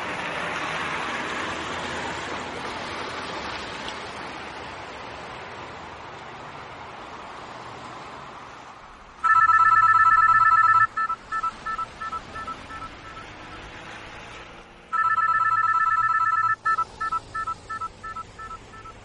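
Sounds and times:
cell phone ringing with electronic chirping tones: 0:09.2 - 0:13.7, 0:14.9 - 0:19.0.

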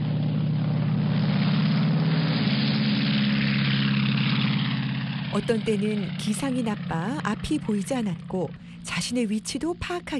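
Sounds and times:
airplane engine droning in flight: 0:00.0 - 0:10.1
speech: 0:05.3 - 0:10.1.

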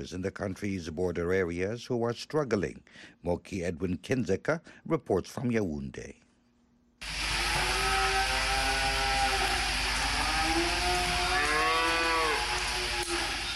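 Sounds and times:
speech: 0:00.0 - 0:06.2
rancher's herd of cows mooing on River Vina banks in Cameroon: 0:07.3 - 0:13.4.

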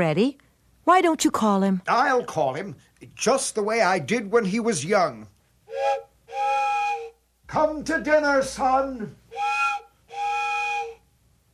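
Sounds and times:
speech: 0:00.0 - 0:06.0, 0:07.5 - 0:09.2
old train whistle blasts: 0:05.7 - 0:07.2, 0:09.3 - 0:11.1.

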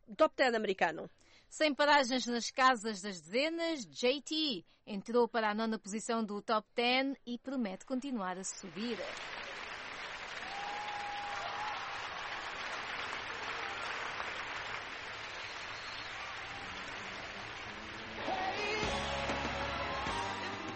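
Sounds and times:
speech: 0:00.1 - 0:09.4
large crowd applauding: 0:08.7 - 0:20.7.

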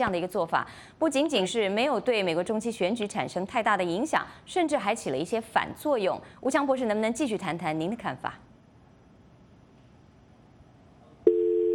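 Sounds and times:
speech: 0:00.0 - 0:08.5
telephone busy signal of a dropped phone line: 0:11.3 - 0:11.7.

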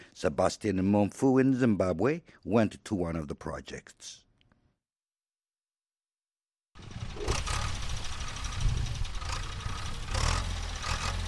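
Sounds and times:
speech: 0:00.2 - 0:04.2
rattling surges of tractor mechanical noise: 0:06.8 - 0:11.2
tractor engine chugging while tilling farmland: 0:06.8 - 0:11.2.

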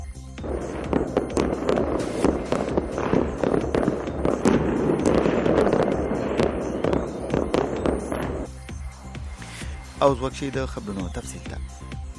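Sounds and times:
celebratory gunfire into the air in a capital city: 0:00.4 - 0:09.9
speech: 0:10.0 - 0:12.0.

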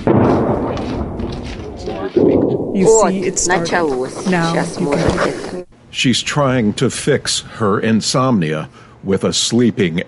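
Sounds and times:
speech: 0:00.0 - 0:01.2, 0:01.8 - 0:10.0
explosion from shelling in a city at night: 0:00.0 - 0:05.3.

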